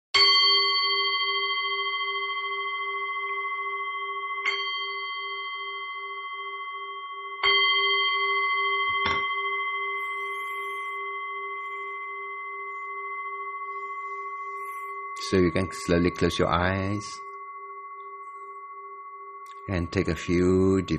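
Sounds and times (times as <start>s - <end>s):
meditation bell struck at a Buddhist practice session: 0.2s - 20.9s
speech: 15.3s - 17.2s, 19.7s - 20.9s.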